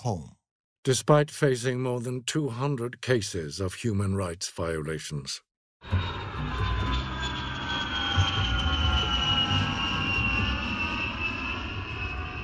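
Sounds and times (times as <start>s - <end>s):
speech: 0.0s - 6.6s
airplane engines roaring while landing: 5.8s - 12.4s.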